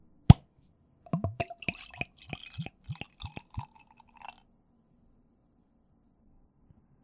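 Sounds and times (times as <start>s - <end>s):
cap popping off a bottle of farmhouse ale: 1.1s - 3.7s
light golden farmhouse ale poured into a glass: 1.1s - 4.4s.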